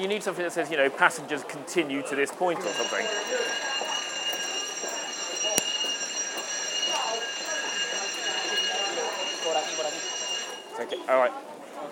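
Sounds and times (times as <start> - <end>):
speech: 0.0 - 3.9, 11.1 - 11.5
busy murmur of indistinct voices: 0.0 - 11.9
fire alarm ringing in a high-pitched tone: 2.6 - 10.8.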